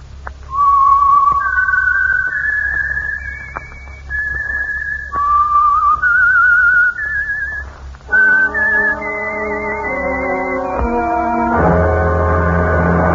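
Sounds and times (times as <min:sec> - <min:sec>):
low steady hum: 0:00.0 - 0:13.1
slow whistled melody of long sustained notes: 0:00.5 - 0:13.1.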